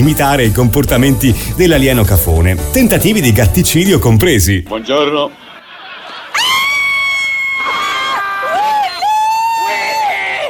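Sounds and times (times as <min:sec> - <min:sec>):
speech: 0:00.0 - 0:05.4
laughter: 0:04.7 - 0:10.4
several people screaming and whooping: 0:06.1 - 0:10.4.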